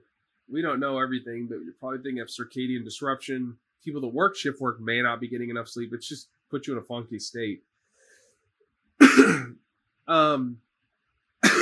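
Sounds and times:
speech: 0.5 - 7.7, 9.2 - 10.6
harsh throat clearing: 9.0 - 9.5, 10.1 - 10.5, 11.4 - 11.6
person coughing: 9.0 - 9.5, 11.4 - 11.6.

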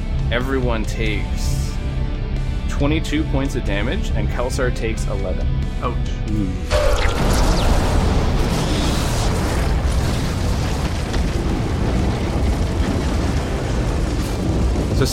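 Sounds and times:
speech: 0.3 - 1.6, 2.8 - 7.8
explosion blast sound effect: 6.7 - 15.1.

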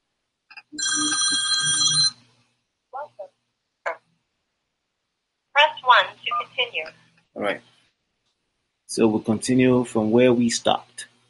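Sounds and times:
phone ringing with a bright electronic warble: 0.8 - 2.3
speech: 5.9 - 7.7, 8.9 - 11.1.

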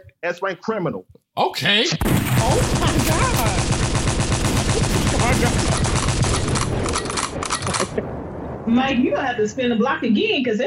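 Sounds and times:
speech: 0.2 - 3.8, 5.2 - 5.9, 8.0 - 10.6
rapid pistol gunfire: 2.0 - 8.0.

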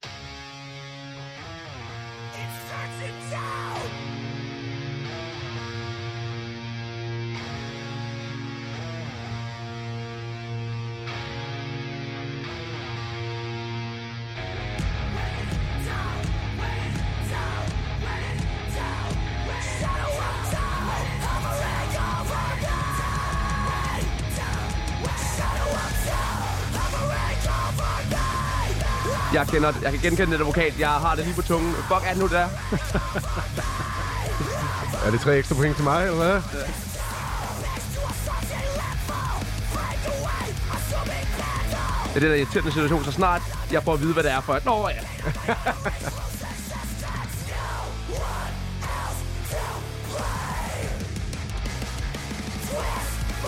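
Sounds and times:
dense distorted guitars: 0.0 - 53.4
metal music with heavy guitar riffs: 0.0 - 53.4
shouted vocals: 2.4 - 4.0, 15.0 - 51.1, 52.4 - 53.4
laughter: 29.0 - 36.9, 42.2 - 47.6
speech: 29.4 - 33.7, 35.0 - 36.9, 42.2 - 46.0.

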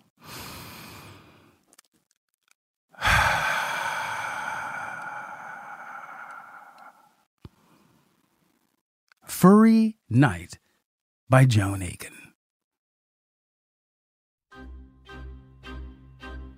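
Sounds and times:
soft inhale: 0.2 - 1.6, 3.0 - 8.2
long sighing exhale: 3.0 - 7.2
speech: 9.4 - 10.6, 11.3 - 12.2.

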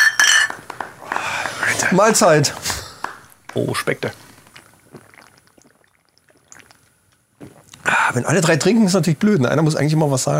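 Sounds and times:
glasses clinking in a toast: 0.0 - 0.7
speech: 1.8 - 2.7, 3.6 - 4.2, 8.2 - 10.3.

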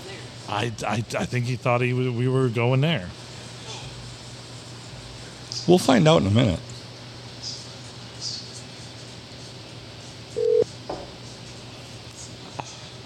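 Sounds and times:
speech: 0.5 - 3.2, 5.6 - 6.7
telephone ringtone: 10.4 - 10.6.

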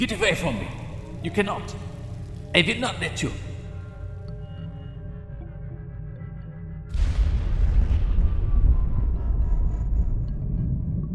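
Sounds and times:
speech: 0.0 - 1.9, 2.5 - 3.5
explosion echoing across open landscape: 6.9 - 11.0.

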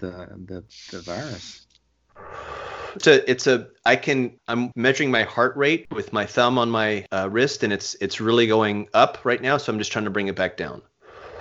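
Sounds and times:
speech: 0.0 - 1.7, 2.9 - 10.9
long raspy labored breath: 2.2 - 3.0, 11.0 - 11.4
short voiced gasps: 2.2 - 3.0, 11.0 - 11.4.

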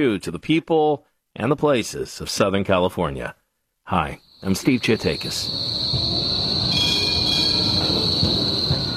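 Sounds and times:
speech: 0.0 - 5.9
low continuous rumble of S-Bahn railcars rolling along tracks in Berlin: 4.4 - 8.9
S-Bahn train wheel squeal in Berlin: 4.5 - 8.9.

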